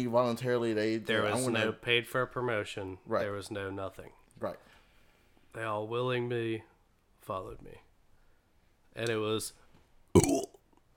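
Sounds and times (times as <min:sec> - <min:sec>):
speech: 0:00.0 - 0:04.7, 0:05.5 - 0:07.8, 0:09.0 - 0:09.6, 0:10.2 - 0:10.5
burp: 0:10.2 - 0:10.6.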